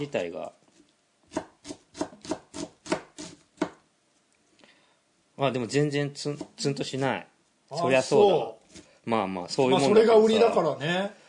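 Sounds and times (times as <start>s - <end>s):
speech: 0.0s - 0.6s, 5.4s - 11.2s
knife chopping an onion on a board: 1.3s - 3.8s, 6.3s - 6.7s.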